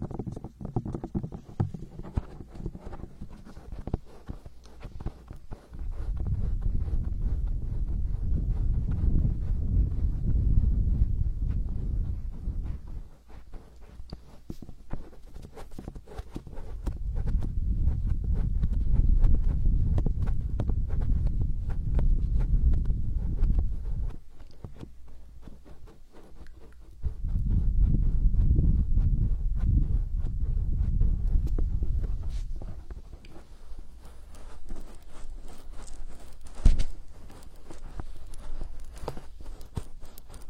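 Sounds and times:
low muffled rubbing and kneading of a hand massage: 0:00.0 - 0:40.4.

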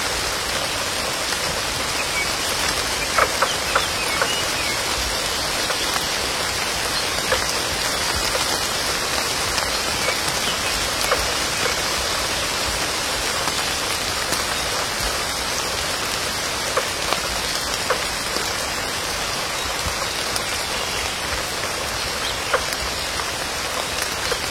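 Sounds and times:
wilderness rain shower pattering: 0:00.0 - 0:24.5
sharper drips: 0:00.4 - 0:24.5.

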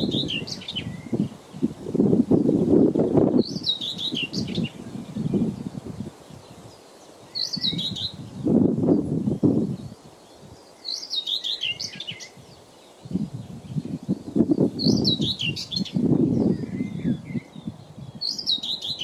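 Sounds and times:
bright short bird chirps: 0:00.0 - 0:01.2, 0:03.4 - 0:05.5, 0:06.3 - 0:08.4, 0:09.4 - 0:19.0
hot summer wind blowing in low rumbling gusts: 0:00.0 - 0:19.0.

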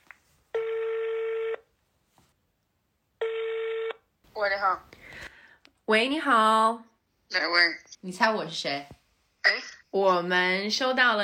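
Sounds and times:
long steady electronic telephone tones as a number is dialed: 0:00.6 - 0:01.6, 0:03.2 - 0:04.0
speech: 0:04.4 - 0:05.0, 0:05.9 - 0:11.2.

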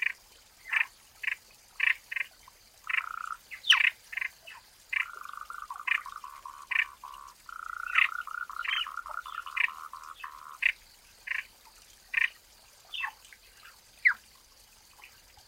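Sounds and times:
louder clipped frog notes in a forest: 0:00.0 - 0:11.5
frogs giving a rapid rattling trill in a forest: 0:02.9 - 0:04.3, 0:04.9 - 0:11.4.

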